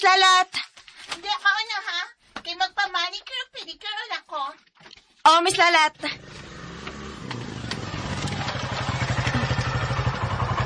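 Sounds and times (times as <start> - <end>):
speech: 0.0 - 4.7, 5.3 - 6.4
motorcycle engine chugging: 6.0 - 10.6.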